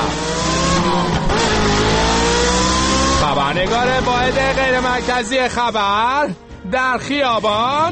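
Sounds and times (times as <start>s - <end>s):
car engine revving and accelerating: 0.0s - 6.0s
speech: 3.6s - 7.9s.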